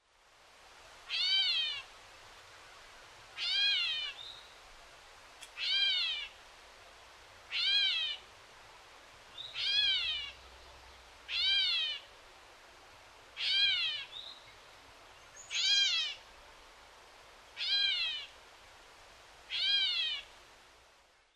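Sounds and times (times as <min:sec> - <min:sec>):
gray catbird call: 0:01.1 - 0:01.9, 0:03.4 - 0:04.3, 0:05.6 - 0:06.4, 0:07.5 - 0:08.2, 0:09.4 - 0:10.4, 0:11.3 - 0:12.1, 0:13.4 - 0:14.2, 0:15.4 - 0:16.2, 0:17.6 - 0:18.4, 0:19.5 - 0:20.3.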